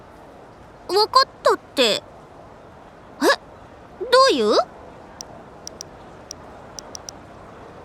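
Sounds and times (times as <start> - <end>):
speech: 0.9 - 2.1
short quiet phone keypad beeps: 6.8 - 7.1.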